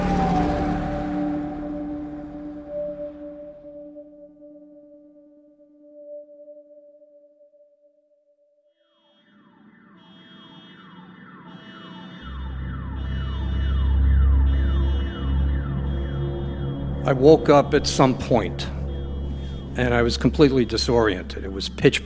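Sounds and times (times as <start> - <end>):
heavy low emergency truck engine rumble: 0.0 - 3.6, 12.4 - 22.0
emergency truck siren wailing: 0.0 - 4.8, 8.8 - 22.0
speech: 17.1 - 18.8, 19.8 - 22.0.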